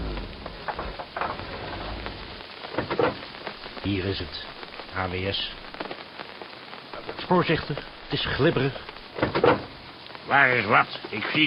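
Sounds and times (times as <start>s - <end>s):
low rumble: 0.0s - 2.5s
steady rain pouring down: 0.0s - 11.4s
speech: 3.9s - 5.6s, 7.3s - 9.6s, 10.3s - 11.4s.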